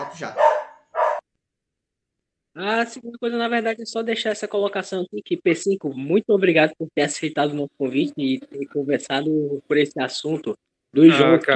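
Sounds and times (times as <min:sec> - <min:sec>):
female dog barking: 0:00.0 - 0:01.2
speech: 0:00.2 - 0:00.5, 0:02.6 - 0:11.5.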